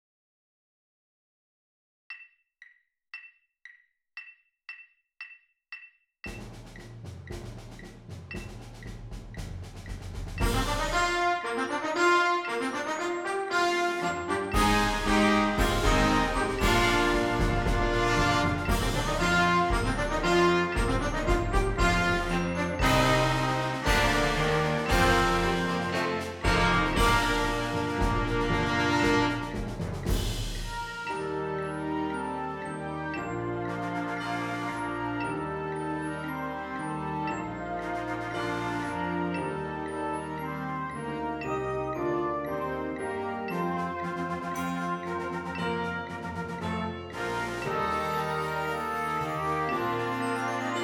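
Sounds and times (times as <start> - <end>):
click track: 2.1 - 10.0
full ensemble fanfare: 10.3 - 50.8.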